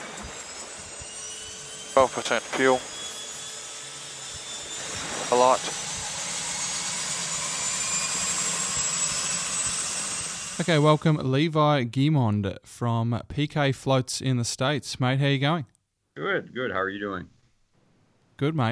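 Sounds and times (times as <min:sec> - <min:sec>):
right engine of a private seaplane with floats turning over and running: 0:00.0 - 0:11.3
speech: 0:02.0 - 0:02.9, 0:05.3 - 0:05.8, 0:10.6 - 0:17.4, 0:18.4 - 0:18.7.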